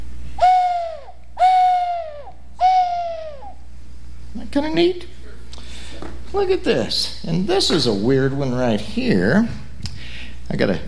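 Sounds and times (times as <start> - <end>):
owl-shaped whistle blown, breathy hoot: 0.4 - 3.7
speech: 4.5 - 5.2, 6.3 - 9.6, 10.5 - 10.8.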